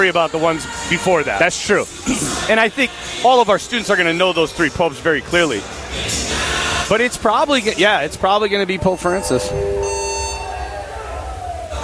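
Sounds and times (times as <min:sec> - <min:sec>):
speech: 0:00.0 - 0:10.0
fire alarm set off by smoke buzzing: 0:08.8 - 0:11.8.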